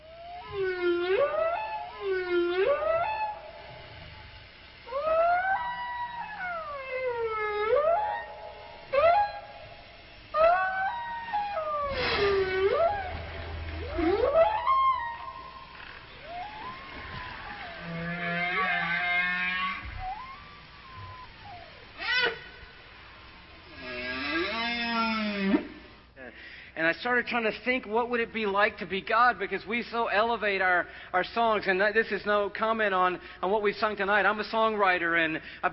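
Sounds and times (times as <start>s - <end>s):
whale song: 0.0s - 26.0s
speech: 27.0s - 35.7s.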